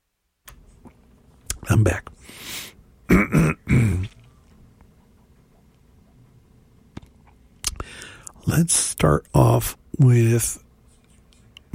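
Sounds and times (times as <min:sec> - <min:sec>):
speech: 0:01.7 - 0:04.1, 0:08.5 - 0:10.6
harsh coughing and throat clearing: 0:03.1 - 0:04.3.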